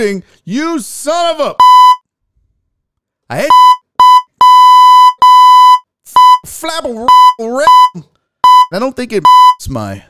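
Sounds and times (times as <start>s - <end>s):
speech: 0.0s - 1.8s, 3.3s - 3.8s, 6.6s - 10.0s
loud electronic beep: 1.6s - 2.0s, 3.5s - 6.5s, 7.1s - 8.7s, 9.3s - 9.6s.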